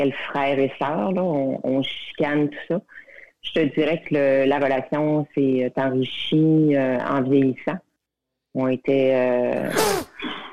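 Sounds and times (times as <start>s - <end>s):
speech: 0.0s - 7.8s, 8.5s - 10.4s
person sneezing: 9.6s - 10.5s.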